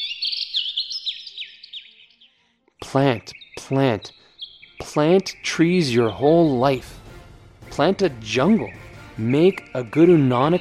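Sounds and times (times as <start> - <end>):
birds chirping in a forest: 0.0 - 10.5
speech: 2.9 - 4.2, 4.8 - 7.0, 7.8 - 10.5.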